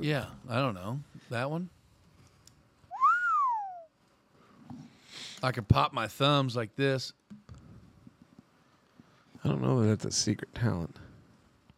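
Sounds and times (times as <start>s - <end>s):
speech: 0.0s - 1.8s, 5.4s - 7.2s, 9.4s - 11.0s
person whistling a breathy note while inhaling: 2.9s - 3.9s.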